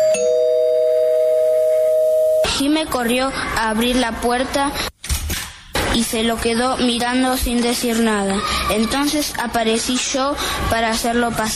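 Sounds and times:
doorbell ringing: 0.0 - 2.5
speech: 2.6 - 4.9, 6.0 - 11.5.

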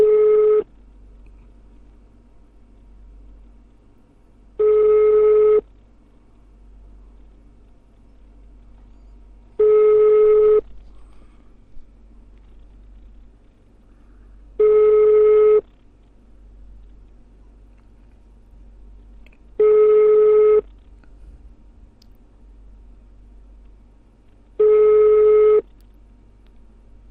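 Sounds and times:
telephone ringback tone of an unanswered call: 0.0 - 0.6, 4.6 - 5.6, 9.6 - 10.6, 14.6 - 15.6, 19.6 - 20.6, 24.6 - 25.6.

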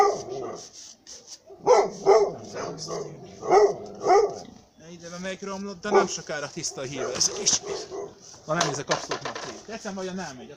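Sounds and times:
dog barking outside: 0.0 - 0.7, 1.5 - 4.5, 5.8 - 8.2
speech: 5.3 - 10.5.

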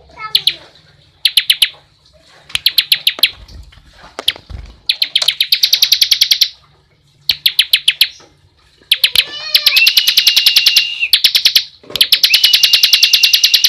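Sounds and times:
bar-winged prinia giving piercing repeated notes: 1.2 - 1.8, 2.5 - 3.4, 4.9 - 6.6, 7.3 - 8.2, 8.9 - 13.6.

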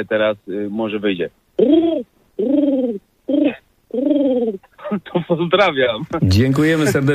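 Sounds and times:
speech: 0.0 - 7.1
voice imitating a lovesick pigeon's morning cooing: 1.6 - 4.8.

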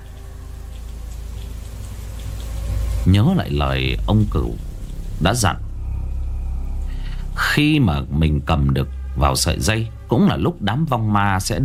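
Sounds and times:
low rumble: 0.0 - 11.6
steady rain falling in a graveyard: 0.0 - 11.6
speech: 3.0 - 5.6, 7.6 - 11.6.

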